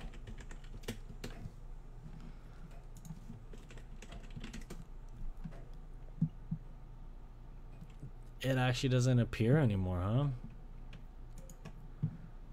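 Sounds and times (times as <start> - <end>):
typing on a computer keyboard: 0.0 - 1.5, 3.0 - 5.6, 10.9 - 11.8
speech: 8.4 - 10.5.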